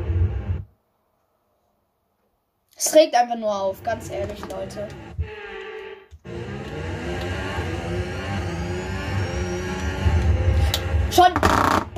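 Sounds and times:
speech: 0:02.8 - 0:05.2, 0:11.2 - 0:11.9
racing car engine revving in a video game: 0:03.6 - 0:05.4, 0:06.2 - 0:11.9.

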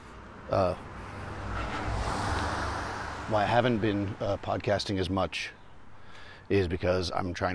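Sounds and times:
car approaching with road noise: 0:00.0 - 0:06.1
speech: 0:00.5 - 0:00.9, 0:03.3 - 0:05.6, 0:06.5 - 0:07.5.

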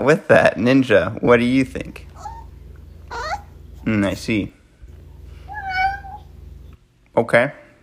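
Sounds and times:
speech: 0:00.0 - 0:02.1, 0:03.8 - 0:04.6, 0:07.2 - 0:07.6
faint low hum: 0:00.0 - 0:07.8
cat meowing: 0:03.1 - 0:03.5, 0:05.5 - 0:06.3.

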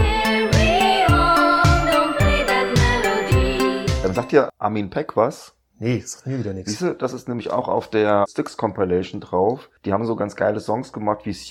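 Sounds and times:
sparse minimalist electronic music track loop: 0:00.0 - 0:04.5
speech: 0:04.2 - 0:11.4.

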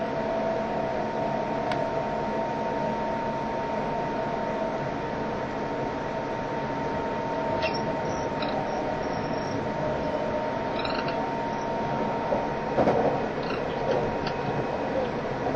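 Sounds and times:
express train running at speed: 0:00.0 - 0:15.5
thin constant whine above the express train: 0:00.0 - 0:15.5
short bright squeals and clicks from the train wheels: 0:07.6 - 0:09.7, 0:10.7 - 0:11.8, 0:13.4 - 0:14.4.

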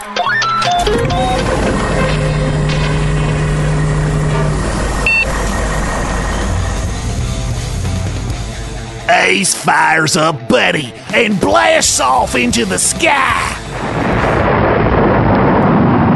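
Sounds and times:
sharp electronic beeps: 0:00.1 - 0:07.3
heavy truck engine rumbling driving into a truck wash: 0:00.6 - 0:09.2, 0:10.8 - 0:16.0
truck wash machinery hissing and whirring: 0:00.8 - 0:14.6
speech: 0:09.3 - 0:14.0.

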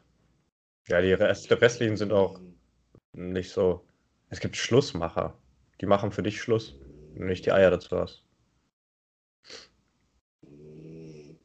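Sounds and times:
speech: 0:00.9 - 0:02.6, 0:03.2 - 0:08.2, 0:09.4 - 0:09.7
dog snoring: 0:06.6 - 0:07.7, 0:10.4 - 0:11.4.

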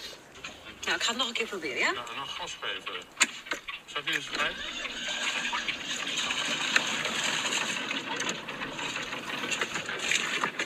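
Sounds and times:
faint mechanical hum: 0:00.0 - 0:10.6
speech: 0:00.9 - 0:05.0
water gushing from a machine: 0:04.0 - 0:10.6.

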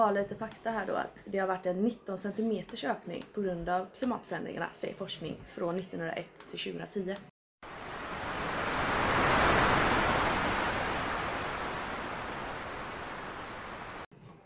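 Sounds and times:
speech: 0:00.0 - 0:07.3
underwater rush of water: 0:07.6 - 0:14.1.

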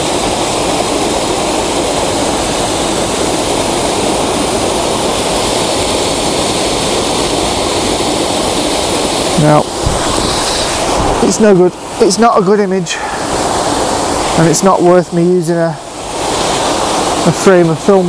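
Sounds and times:
waterfall rushing: 0:00.0 - 0:18.0
speech: 0:09.4 - 0:09.8, 0:11.2 - 0:13.2, 0:14.4 - 0:15.8, 0:17.2 - 0:18.0.

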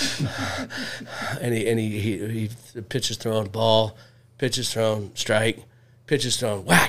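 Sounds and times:
person imitating heavy rapid breathing: 0:00.0 - 0:01.4
speech: 0:00.6 - 0:06.8.

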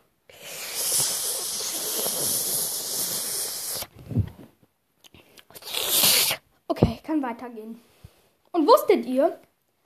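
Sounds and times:
person drinking water with breathy hiss: 0:00.3 - 0:04.4, 0:05.2 - 0:06.4
speech: 0:07.3 - 0:07.9, 0:08.6 - 0:09.5.

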